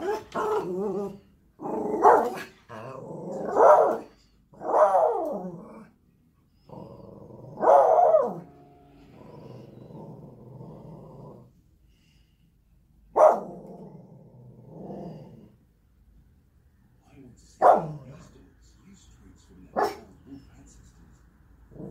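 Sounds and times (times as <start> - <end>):
Spitz dog barking and yelping: 0.0 - 5.8, 6.7 - 8.5, 13.2 - 13.8, 19.8 - 20.1.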